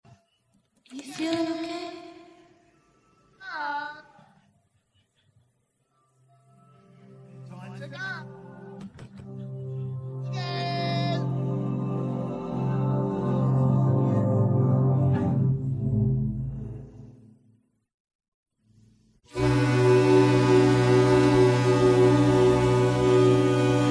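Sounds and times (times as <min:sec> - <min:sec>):
orchestra playing: 0:07.2 - 0:16.8, 0:19.4 - 0:23.8.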